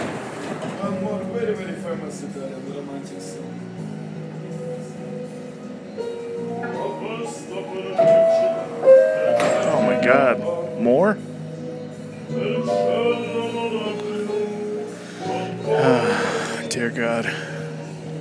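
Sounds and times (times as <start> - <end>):
speech: 1.4 - 4.0, 10.1 - 11.3, 16.8 - 17.4
music blaring from a portable stereo inside a moving subway car: 3.0 - 18.1.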